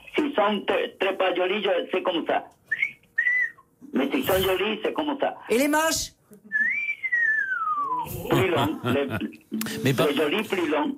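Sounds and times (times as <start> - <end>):
speech: 0.4 - 2.6, 3.9 - 6.4, 8.0 - 10.9
person whistling at women: 2.7 - 3.7, 6.5 - 8.3
voices talking and laughing: 8.1 - 10.1.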